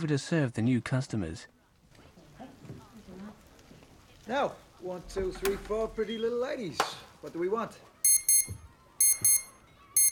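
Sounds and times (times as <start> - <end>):
speech: 0.0 - 1.6, 4.3 - 7.9
alarm clock ringing in shrill electronic bursts: 8.1 - 10.1.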